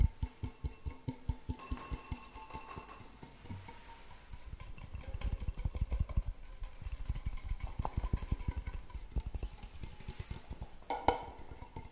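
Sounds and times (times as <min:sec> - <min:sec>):
rapid tapping: 0:00.0 - 0:11.9.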